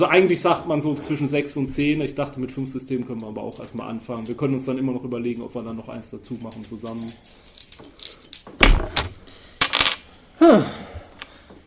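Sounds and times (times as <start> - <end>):
speech: 0.0 - 7.6, 10.5 - 10.8
dice being gathered and dropped onto a hard surface: 3.1 - 4.4, 6.3 - 10.0.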